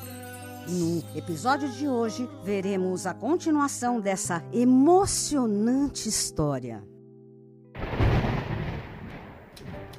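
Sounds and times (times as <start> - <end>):
speech: 0.7 - 6.9
deep rumble of thunder in a rainstorm: 7.8 - 9.9.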